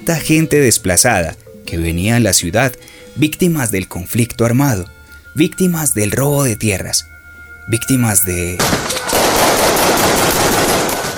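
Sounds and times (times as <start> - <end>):
speech: 0.0 - 7.1, 7.7 - 9.0
rapid automatic gunfire between drug traffickers in a neighbourhood: 8.6 - 11.1.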